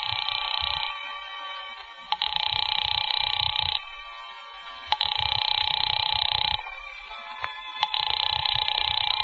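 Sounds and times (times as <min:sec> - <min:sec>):
house phone ringing unanswered: 0:00.0 - 0:01.2, 0:02.1 - 0:04.2, 0:04.9 - 0:06.8, 0:07.8 - 0:09.2.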